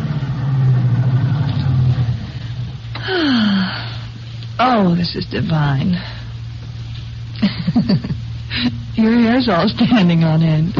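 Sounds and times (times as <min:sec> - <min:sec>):
convertible car engine slowing to idle while pulling into parking spot: 0:00.0 - 0:03.1
speech: 0:04.8 - 0:06.2, 0:07.4 - 0:10.7.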